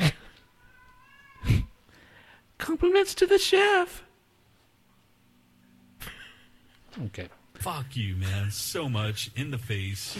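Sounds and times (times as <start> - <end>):
cat meowing: 0.4 - 1.8
speech: 2.7 - 4.1, 7.0 - 10.1.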